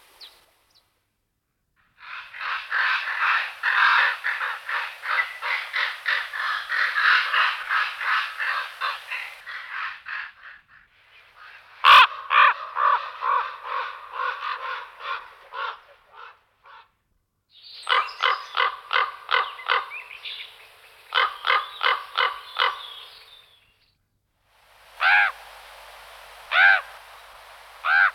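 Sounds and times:
common raven Corvus corax rasping calls: 0:01.9 - 0:16.9, 0:17.9 - 0:20.0, 0:21.1 - 0:23.1, 0:24.9 - 0:25.5, 0:26.5 - 0:27.0, 0:27.8 - 0:28.1.

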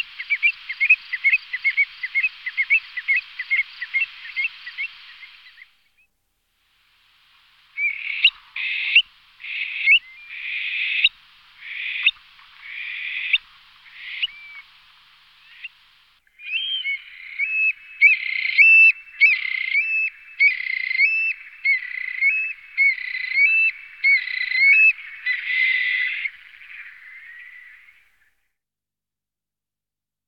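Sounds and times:
Eurasian stone-curlew Burhinus oedicnemus giving shrill wailing whistled calls: 0:00.0 - 0:05.7, 0:07.8 - 0:14.8, 0:16.4 - 0:28.2.

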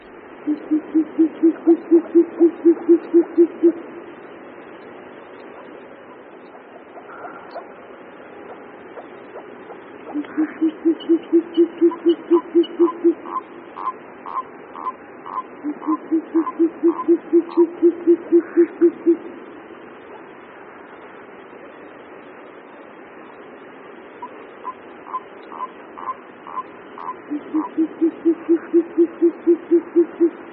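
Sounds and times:
short-eared owl fainter higher notes: 0:00.0 - 0:04.1, 0:05.5 - 0:20.3, 0:24.2 - 0:30.5
short-eared owl male courtship hooting: 0:00.4 - 0:03.9, 0:08.4 - 0:19.4, 0:24.2 - 0:30.5.

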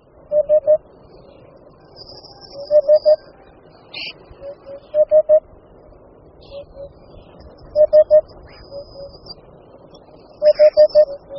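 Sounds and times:
Eurasian hoopoe calling: 0:02.5 - 0:03.3, 0:04.0 - 0:05.4, 0:06.4 - 0:07.0, 0:07.8 - 0:09.2, 0:10.4 - 0:11.3.

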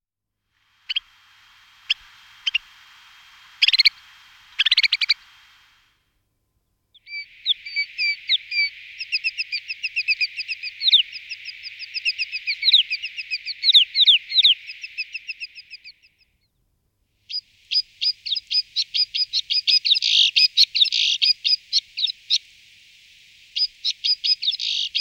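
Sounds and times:
white-winged snowfinch Montifringilla nivalis calling: 0:00.9 - 0:05.6, 0:07.0 - 0:16.3, 0:17.3 - 0:22.6, 0:23.2 - 0:25.0.

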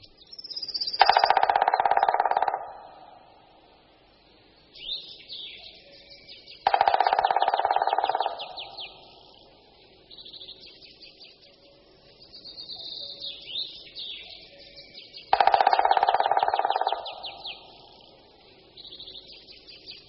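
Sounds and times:
faint bird chirps: 0:00.0 - 0:03.6, 0:04.2 - 0:20.0
black woodpecker drumming on resonant branches and tree trunks: 0:01.0 - 0:03.4, 0:06.6 - 0:09.4, 0:15.2 - 0:18.1.

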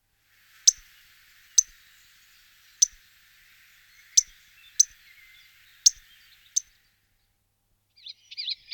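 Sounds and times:
melodious warbler Hippolais polyglotta: 0:00.6 - 0:06.7.

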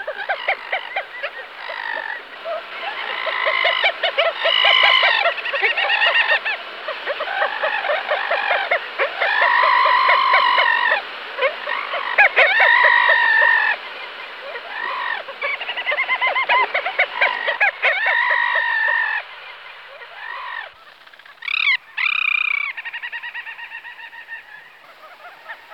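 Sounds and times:
Alle alle little auk colony chatter: 0:00.0 - 0:23.7.

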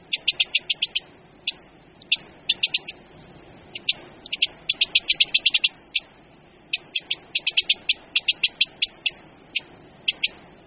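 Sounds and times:
Eurasian wren sharp dry ticking alarm calls: 0:00.0 - 0:03.1, 0:03.7 - 0:10.6.

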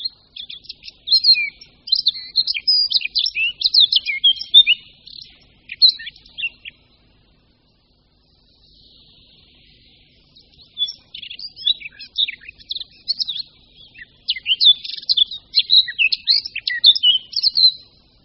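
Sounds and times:
Eurasian blackcap singing: 0:00.0 - 0:07.8, 0:08.4 - 0:18.2.

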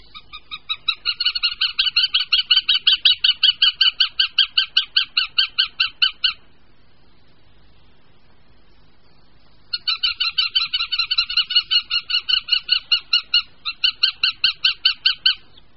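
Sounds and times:
northern goshawk ringing call: 0:00.0 - 0:06.5, 0:09.7 - 0:15.6.

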